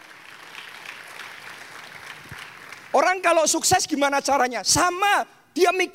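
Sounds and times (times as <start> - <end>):
audience applause: 0.0 - 3.0
speech: 3.0 - 5.9.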